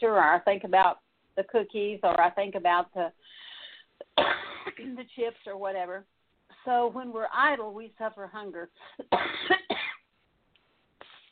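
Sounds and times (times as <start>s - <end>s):
speech: 0.0s - 3.5s, 4.1s - 9.7s
harsh coughs: 4.0s - 4.9s, 9.0s - 10.1s.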